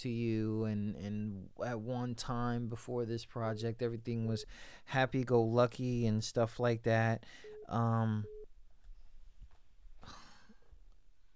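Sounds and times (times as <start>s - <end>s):
speech: 0.0s - 8.4s
faint noise: 0.0s - 11.3s
brief steady beep: 7.4s - 8.5s
telephone ringing: 7.4s - 8.5s.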